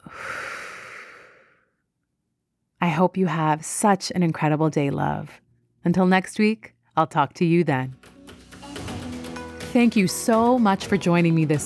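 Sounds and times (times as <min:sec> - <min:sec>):
deep breath in and out in a guided breathing exercise: 0:00.0 - 0:01.8
speech: 0:02.9 - 0:08.1, 0:09.7 - 0:11.6.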